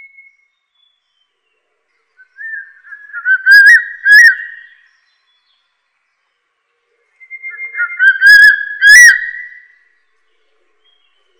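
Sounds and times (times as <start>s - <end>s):
Crested serpent eagle whistled call: 2.2s - 4.8s, 7.2s - 9.7s.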